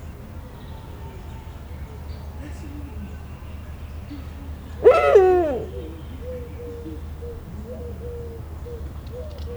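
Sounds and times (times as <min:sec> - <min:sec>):
captive Eurasian eagle-owl calling at a zoo in Szeged: 0:04.8 - 0:07.0.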